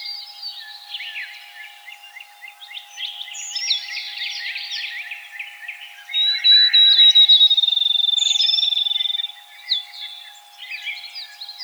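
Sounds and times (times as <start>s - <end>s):
Field sparrow song of clear high whistled notes into rapid trill: 0.0s - 11.6s.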